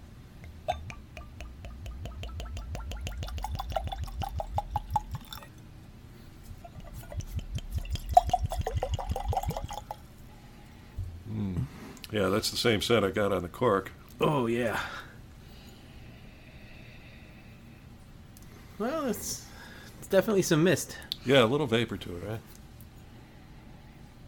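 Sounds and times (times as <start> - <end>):
wine glugging from a bottle into glasses: 0.5 - 5.5, 6.5 - 10.0
speech: 12.2 - 15.0, 20.1 - 22.5.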